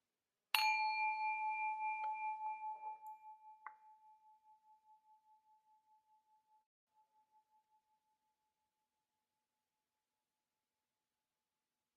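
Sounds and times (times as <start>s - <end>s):
meditation bell ringing at a meditation center: 0.6s - 5.9s.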